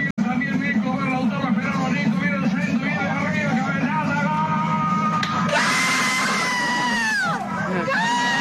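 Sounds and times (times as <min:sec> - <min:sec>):
constant low rumble of a city bus: 0:00.0 - 0:08.3
bus passengers, women among them, cheering a goal: 0:04.3 - 0:08.3.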